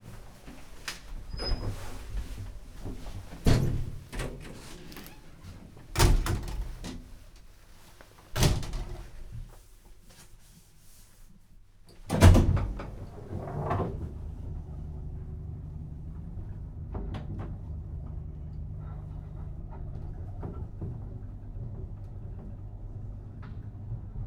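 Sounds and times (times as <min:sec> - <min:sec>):
lift ride from the ground floor in Angyalföld: 0:00.4 - 0:07.3, 0:12.1 - 0:24.2.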